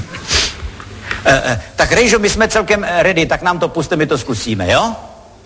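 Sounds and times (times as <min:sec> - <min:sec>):
person blowing nose with a long breathy honk: 0:00.2 - 0:00.6
speech: 0:01.2 - 0:05.1.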